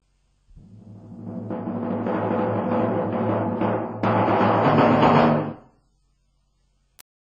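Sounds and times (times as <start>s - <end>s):
timpani: 0.6s - 5.7s.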